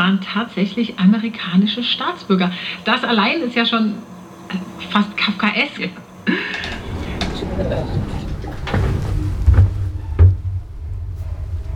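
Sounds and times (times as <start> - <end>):
faint rumbling room tone: 0.0 - 11.7
speech: 0.1 - 6.9, 7.5 - 8.2
heavy door closing with a dull low thud: 6.4 - 11.7
door bumping as it settles: 6.6 - 10.9.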